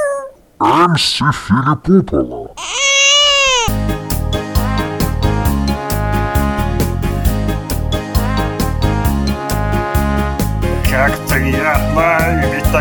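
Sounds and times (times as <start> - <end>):
baby giving a short wavering wail: 0.0 - 0.4, 2.6 - 3.8
speech: 0.6 - 2.8, 11.0 - 12.7
loud bouncy music with a steady thumping beat: 3.7 - 12.7.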